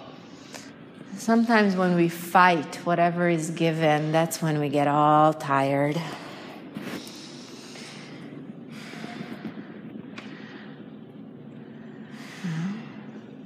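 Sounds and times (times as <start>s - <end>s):
speech: 1.2s - 6.2s
heavy breathing through the nose: 6.0s - 13.2s.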